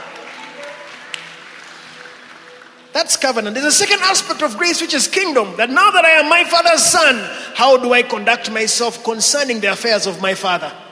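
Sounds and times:
church congregation clapping: 0.0s - 4.8s
speech: 3.0s - 10.9s.

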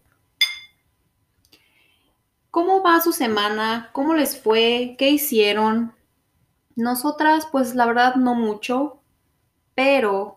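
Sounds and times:
glasses clinking in a toast: 0.4s - 0.8s
speech: 2.6s - 6.0s, 6.8s - 9.0s, 9.8s - 10.3s.

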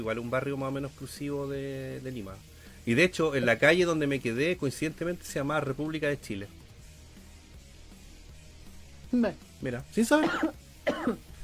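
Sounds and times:
speech: 0.0s - 6.6s, 9.1s - 11.3s
person coughing: 10.2s - 11.4s.

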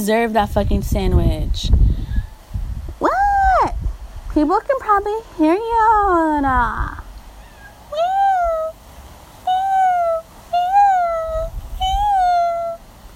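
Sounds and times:
speech: 0.0s - 1.9s, 4.4s - 7.0s
person imitating a cat's meow: 3.0s - 3.8s, 6.7s - 8.8s, 9.5s - 12.8s.

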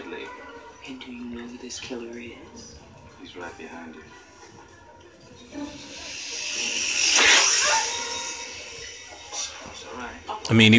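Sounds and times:
speech: 0.9s - 4.2s, 5.4s - 6.1s, 10.0s - 10.7s
snake hissing: 5.5s - 10.4s.

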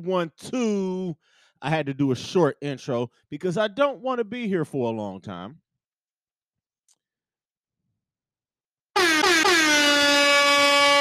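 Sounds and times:
speech: 0.0s - 5.6s
air horn sound effect blasts: 9.0s - 10.9s.

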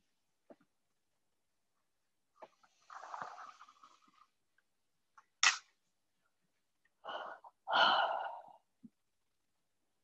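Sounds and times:
deep breathing during a guided meditation: 7.0s - 8.7s.

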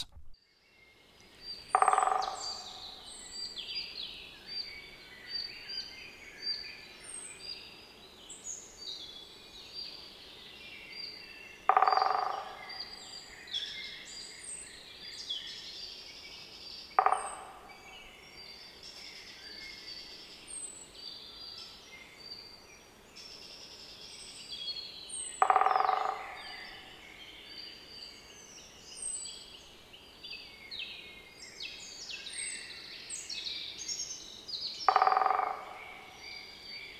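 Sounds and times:
birdsong twittering: 0.0s - 36.9s
great spotted woodpecker kik call: 1.7s - 3.1s, 11.6s - 13.3s, 16.9s - 18.1s, 25.3s - 27.2s, 34.8s - 36.9s.

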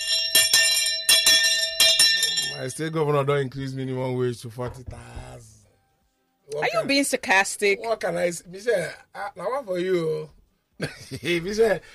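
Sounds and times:
hand bell ringing: 0.0s - 2.6s
speech: 2.6s - 5.6s, 6.5s - 11.9s.

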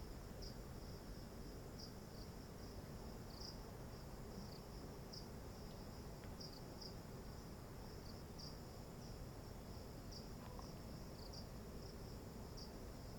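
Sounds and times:
crickets chirping in a high-pitched pulsing band: 0.0s - 13.1s.

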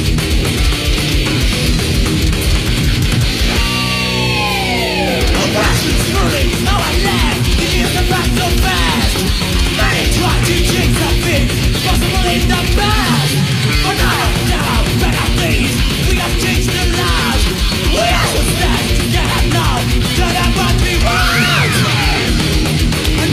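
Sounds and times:
Argentine 1980s thrash metal with fast distorted guitars and pounding drums: 0.0s - 23.3s
harsh screamed vocal with high sliding shrieks: 21.0s - 22.3s.

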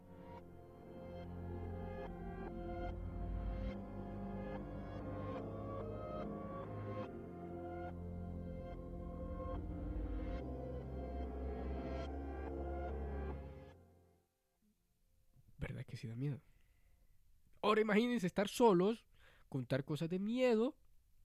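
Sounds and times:
creepy song with deep sustained bass and pulsing notes: 0.0s - 13.8s
speech: 15.9s - 16.5s, 17.7s - 20.8s.

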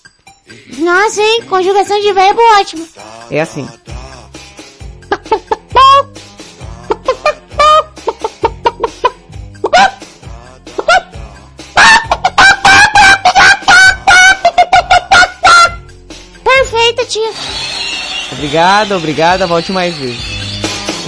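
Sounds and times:
speech: 0.5s - 3.8s, 18.5s - 20.3s
person vocally imitating a hen clucking: 5.1s - 6.1s, 6.7s - 10.1s, 10.7s - 15.9s.

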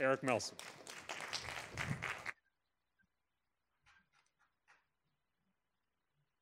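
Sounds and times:
speech: 0.0s - 2.0s
applause and crowd noise for a musician's performance: 0.0s - 2.4s.

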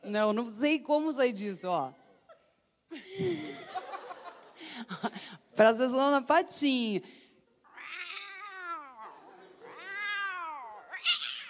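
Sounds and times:
speech: 0.1s - 2.0s, 2.9s - 3.7s, 4.8s - 7.2s
laughter: 2.9s - 5.2s, 9.0s - 9.9s
cat meowing in drawn-out wavering cries: 7.7s - 11.4s.

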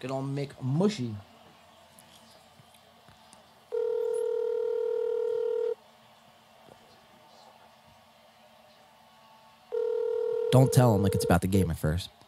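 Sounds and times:
speech: 0.0s - 1.3s, 10.6s - 12.2s
faint room noise: 0.0s - 12.2s
outgoing phone call ringback tone over a speakerphone: 3.7s - 5.8s, 9.7s - 11.4s.

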